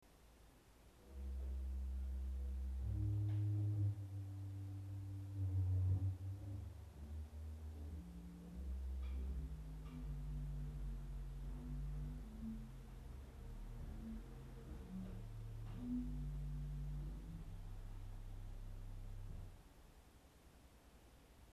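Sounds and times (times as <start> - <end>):
Subbass 16 organ stop: 1.0 - 19.6.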